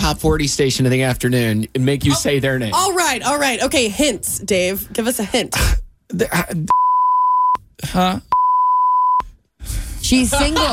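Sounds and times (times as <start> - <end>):
speech: 0.1 - 6.8, 7.8 - 8.3, 10.1 - 10.7
censor bleeps over a spoken name: 6.7 - 7.6, 8.3 - 9.3.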